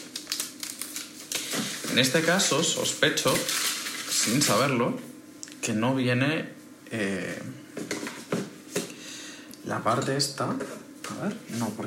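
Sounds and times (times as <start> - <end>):
paper wrapping being pulled off a laptop charger: 0.0 - 4.8
speech: 2.0 - 7.6, 9.7 - 11.8.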